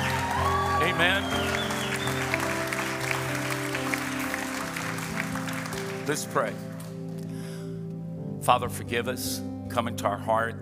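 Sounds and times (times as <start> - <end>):
scattered whoops: 0.0 - 2.8
crowd at a worship service clapping and cheering: 0.0 - 7.3
sustained organ-like music: 0.0 - 9.7
speech: 0.8 - 2.2, 6.1 - 6.7, 8.5 - 10.6.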